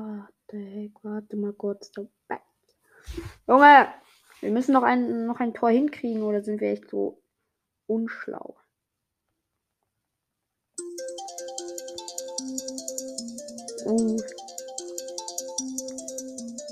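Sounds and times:
speech: 0.5s - 2.4s, 3.0s - 7.2s, 7.9s - 8.6s, 13.8s - 14.4s
electronic timer alarm ringing with a bright repeating melody: 10.8s - 16.6s
person exclaiming: 13.8s - 14.3s.

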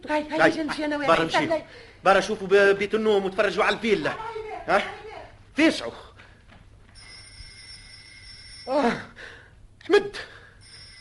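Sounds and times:
speech: 0.0s - 5.0s, 5.6s - 6.1s, 8.7s - 9.3s, 9.9s - 10.3s
low hum: 0.0s - 11.0s
doorbell ringing with one steady electronic tone: 7.0s - 8.7s, 10.6s - 11.0s.

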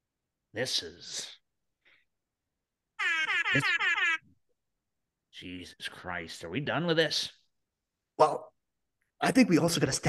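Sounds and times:
speech: 0.5s - 1.4s, 3.5s - 4.0s, 5.4s - 7.4s, 8.2s - 8.5s, 9.2s - 10.0s
vocal-sounding burst: 3.0s - 4.3s.

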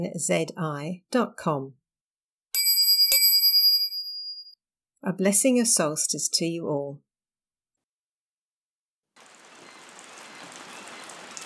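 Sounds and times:
speech: 0.0s - 1.8s, 5.0s - 7.1s
steady rain falling outdoors: 9.2s - 11.4s.

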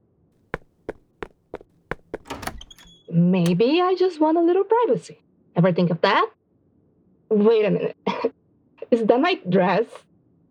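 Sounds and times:
loud thumps on a locked door: 0.6s - 2.9s
rattling scuffling: 0.6s - 2.9s
speech: 3.1s - 6.4s, 7.3s - 8.3s, 8.9s - 10.1s.

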